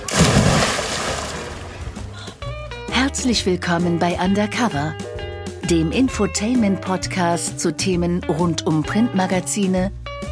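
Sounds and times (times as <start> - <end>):
person doing a cannonball jump splash into water: 0.0 - 2.1
speech: 2.9 - 5.1, 5.7 - 10.0.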